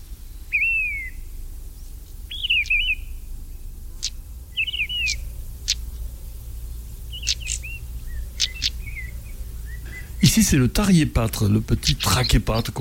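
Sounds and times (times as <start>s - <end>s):
faint low rumble: 0.0s - 12.7s
mistle thrush singing: 4.1s - 12.7s
speech: 10.4s - 12.7s.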